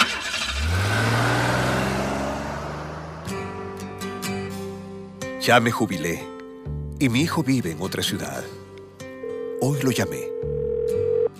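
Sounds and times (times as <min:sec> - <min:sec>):
car engine starting and running as the vehicle pulls away: 0:00.0 - 0:05.3
speech: 0:05.5 - 0:06.3, 0:07.0 - 0:08.6, 0:09.6 - 0:10.6.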